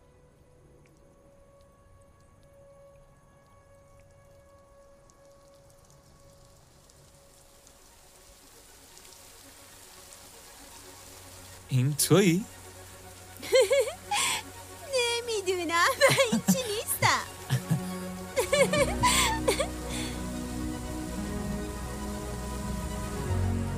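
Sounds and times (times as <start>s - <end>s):
steady rain pattering on a hard surface: 0.0s - 23.7s
speech: 11.7s - 12.5s
laughter: 13.4s - 14.4s, 15.6s - 20.1s.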